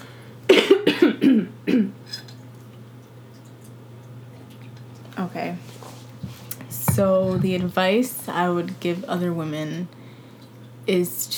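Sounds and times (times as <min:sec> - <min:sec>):
harsh raspy coughs: 0:00.5 - 0:02.0
speech: 0:07.0 - 0:10.0, 0:10.9 - 0:11.3.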